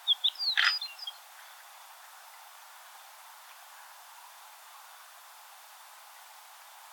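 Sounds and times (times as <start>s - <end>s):
horned lark Eremophila alpestris calling: 0.1s - 1.1s.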